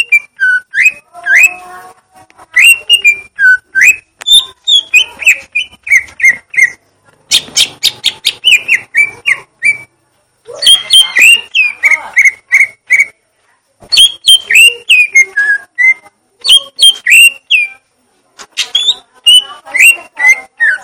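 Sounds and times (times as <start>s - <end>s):
leafbird singing: 2.5s - 9.9s, 10.6s - 13.2s, 13.9s - 17.8s, 18.6s - 20.8s.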